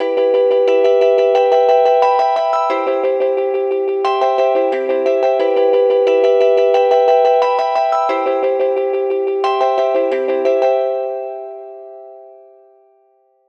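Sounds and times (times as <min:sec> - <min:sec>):
E minor 89 BPM melody: 0:00.0 - 0:13.3.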